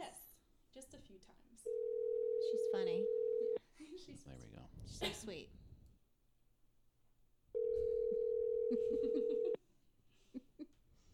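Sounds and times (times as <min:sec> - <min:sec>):
speech: 0:00.7 - 0:03.2, 0:04.0 - 0:05.6
ringback tone on a phone line: 0:01.7 - 0:03.6, 0:07.6 - 0:09.6.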